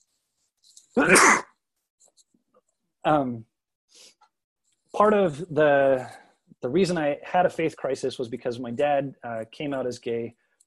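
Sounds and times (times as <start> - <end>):
sneeze: 1.0 - 1.5
speech: 1.0 - 1.5, 3.0 - 3.5, 4.9 - 10.4.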